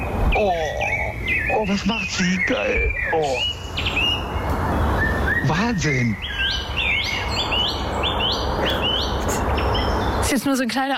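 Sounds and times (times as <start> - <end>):
blackbird singing fluting whistled phrases: 0.0 - 10.6
steady rushing noise: 0.0 - 10.9
speech: 0.4 - 0.8, 1.6 - 4.2, 5.4 - 6.6, 10.3 - 10.9.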